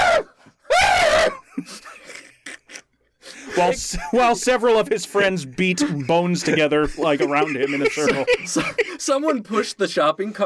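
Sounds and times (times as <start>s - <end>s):
person imitating the shriek of an enraged mandrill: 0.0s - 1.4s
laughter: 1.2s - 9.8s
speech: 3.6s - 10.4s.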